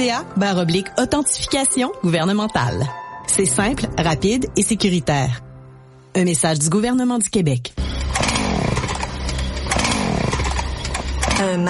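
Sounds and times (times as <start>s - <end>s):
speech: 0.0s - 5.5s, 6.1s - 7.8s, 11.4s - 11.6s
chainsaw revving: 8.1s - 11.4s.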